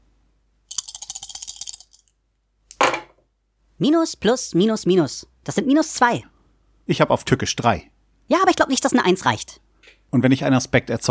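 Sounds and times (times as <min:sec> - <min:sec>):
Fate dice clattering across a hard surface: 0:00.7 - 0:02.1
speech: 0:03.8 - 0:06.3, 0:06.9 - 0:11.0.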